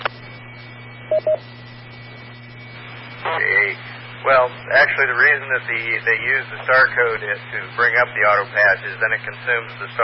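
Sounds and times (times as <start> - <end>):
low electrical hum: 0.0 - 10.0
touch-tone keypad beeps: 1.1 - 1.4
speech: 1.2 - 1.6, 3.4 - 10.0.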